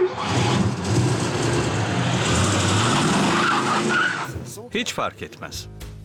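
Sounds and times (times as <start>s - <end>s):
car driving fast, engine and road noise roaring: 0.2s - 4.4s
speech: 4.7s - 5.8s.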